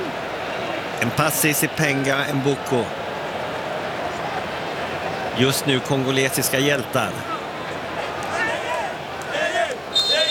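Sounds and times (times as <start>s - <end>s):
stadium crowd of football fans roaring during a match: 0.0s - 10.2s
speech: 1.0s - 3.0s, 5.4s - 7.3s
whistles: 9.9s - 10.2s.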